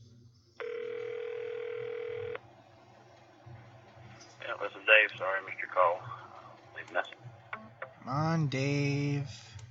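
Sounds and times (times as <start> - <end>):
faint low hum: 0.0 - 9.6
buzzing ringback tone of an outgoing phone call: 0.6 - 2.4
speech: 4.6 - 6.2, 6.8 - 7.2, 8.0 - 9.5.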